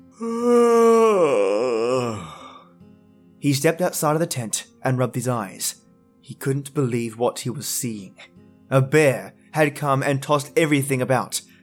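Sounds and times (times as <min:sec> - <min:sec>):
long drawn-out yawn from a single voice: 0:00.1 - 0:02.7
speech: 0:00.2 - 0:00.4, 0:03.4 - 0:11.4.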